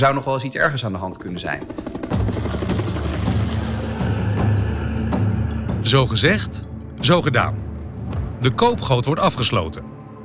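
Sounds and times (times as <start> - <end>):
speech: 0.0 - 2.6, 5.8 - 10.0
helicopter engine roaring with rotor beat: 0.7 - 5.3.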